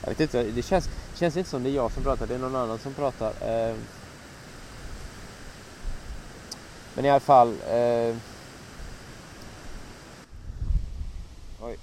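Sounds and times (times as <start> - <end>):
wind buffeting a microphone outdoors: 0.0 - 3.9, 4.6 - 6.4, 8.7 - 11.8
speech: 0.0 - 4.0, 7.0 - 8.3.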